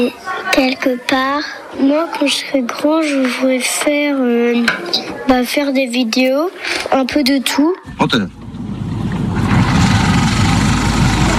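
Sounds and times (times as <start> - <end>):
speech: 0.0 - 8.4
motor idling with a faint rattle: 8.0 - 11.3.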